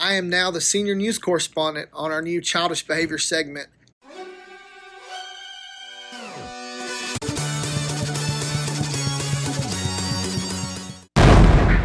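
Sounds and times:
speech: 0.0 - 3.8
short burst of bright brassy music: 4.0 - 11.0
loud cannon blast: 11.2 - 11.8.

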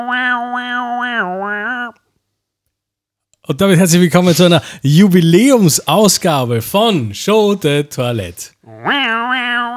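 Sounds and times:
speech: 0.0 - 1.5, 3.5 - 9.5
podcast jingle tone: 3.5 - 8.5.

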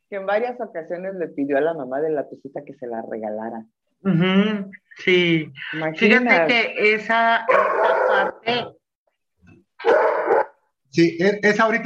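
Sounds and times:
speech: 0.1 - 8.8, 9.8 - 10.1, 10.9 - 11.8
dog barking: 7.5 - 8.6, 9.8 - 10.6.

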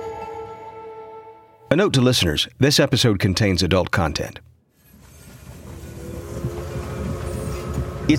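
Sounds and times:
speech: 1.7 - 4.5
train rumbling along the rails: 4.9 - 8.1.

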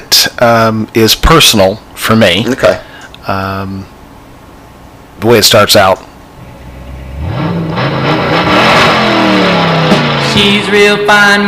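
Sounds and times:
speech: 0.4 - 3.9, 5.2 - 6.1, 10.4 - 11.4
car engine revving with a throaty rising roar: 6.4 - 11.4.

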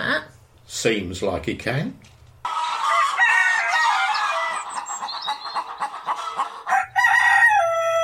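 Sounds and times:
speech: 0.2 - 2.1
flock of chickens clucking and squawking: 2.4 - 8.0
rooster crowing: 2.5 - 5.0, 6.0 - 8.0.

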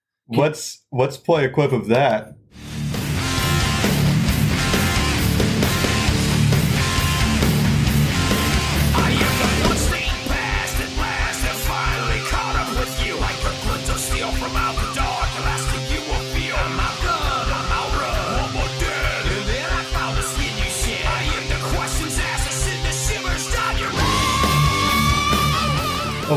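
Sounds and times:
speech: 0.3 - 2.7
dense distorted nu metal guitars: 1.8 - 26.3
shouted half-rapped nu metal vocals: 8.8 - 26.3.

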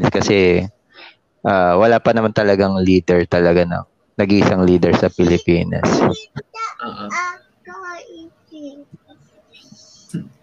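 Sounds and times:
speech: 0.2 - 0.8, 1.4 - 7.4, 10.1 - 10.4
young child babbling: 6.2 - 8.9.

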